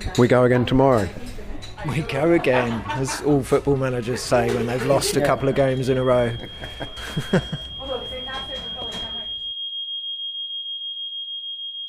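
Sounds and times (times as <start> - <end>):
speech: 0.2 - 1.2, 1.8 - 7.7
laughter: 1.8 - 7.8
hotel fire alarm ringing with high-pitched electronic tone: 4.5 - 11.8.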